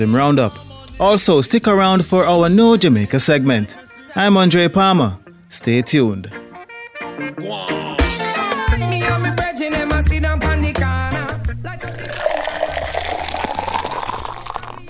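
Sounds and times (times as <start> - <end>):
speech: 0.0 - 6.4, 7.2 - 8.0
music playing: 0.0 - 14.8
Jamaican Blue Mountain coffee being poured: 11.6 - 14.8.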